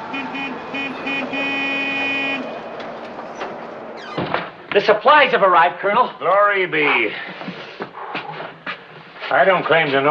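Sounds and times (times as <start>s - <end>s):
supply truck horn honking in the compound: 0.0s - 2.7s
supply truck engine rumbling: 0.0s - 9.0s
outdoor noise: 0.0s - 10.0s
speech: 0.1s - 1.6s, 4.7s - 7.5s, 9.3s - 10.0s.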